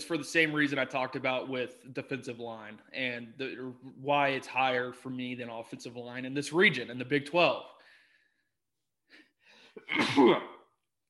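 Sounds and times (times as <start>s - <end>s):
speech: 0.1s - 7.8s, 9.8s - 10.6s
person sneezing: 9.8s - 10.7s.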